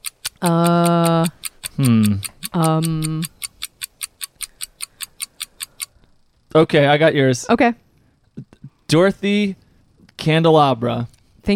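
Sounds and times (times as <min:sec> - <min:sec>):
clock ticking: 0:00.0 - 0:06.0
speech: 0:00.4 - 0:03.4, 0:06.5 - 0:07.8, 0:08.4 - 0:09.6, 0:10.2 - 0:11.5.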